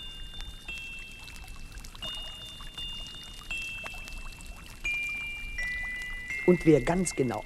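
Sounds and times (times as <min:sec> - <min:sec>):
faint high whistling tones: 0:00.0 - 0:07.4
fountain water splashing and trickling: 0:00.0 - 0:07.4
speech: 0:06.5 - 0:07.4.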